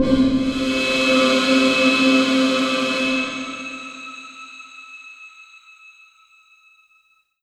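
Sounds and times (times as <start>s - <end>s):
Yamaha V50 Suspense synthesizer note C4: 0.0s - 5.6s.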